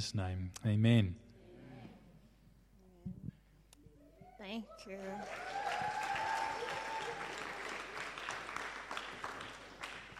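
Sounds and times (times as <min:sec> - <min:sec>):
speech: 0:00.0 - 0:01.2, 0:04.4 - 0:06.0
room full of people clapping: 0:05.2 - 0:10.1.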